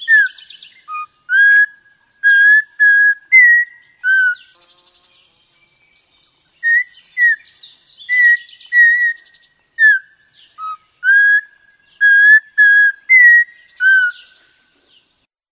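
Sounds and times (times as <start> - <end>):
Audubon's Oriole singing pure whistles: 0.0 - 4.5, 6.4 - 14.4.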